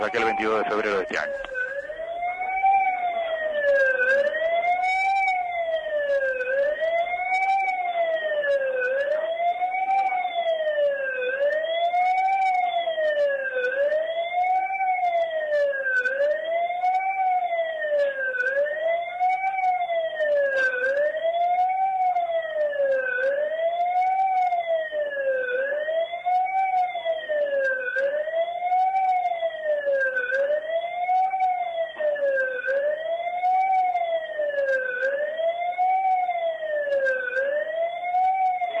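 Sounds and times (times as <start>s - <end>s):
speech: 0.0s - 1.6s
siren wailing at a memorial ceremony: 0.0s - 38.7s.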